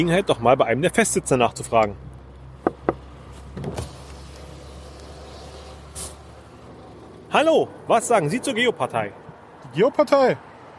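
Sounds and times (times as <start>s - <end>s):
speech: 0.0s - 2.1s, 7.3s - 10.5s
cars idling in stalled traffic: 0.1s - 9.7s
short air hiss: 3.8s - 6.5s.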